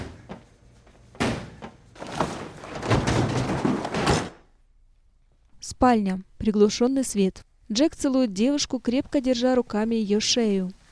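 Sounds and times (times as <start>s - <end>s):
foot kicking the lock off a freezer: 1.2s - 4.4s
clattering, rattling impacts: 2.0s - 4.4s
speech: 5.8s - 10.8s.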